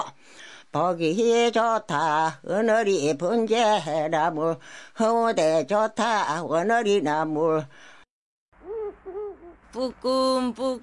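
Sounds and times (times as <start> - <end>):
speech: 0.7 - 7.9, 9.7 - 10.8
human voice imitating dove cooing in Korean folk style: 8.6 - 9.9.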